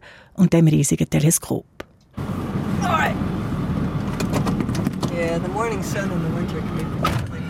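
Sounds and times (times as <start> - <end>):
speech: 0.4 - 1.8, 5.2 - 7.2
diesel pickup truck engine rumbling while driving, heard from inside the cab: 2.2 - 7.4.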